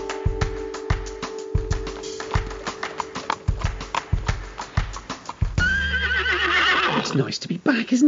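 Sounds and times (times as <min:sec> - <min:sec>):
horse hooves clip-clopping: 0:00.4 - 0:07.2
horse neighing: 0:03.2 - 0:07.3
speech: 0:07.2 - 0:08.0.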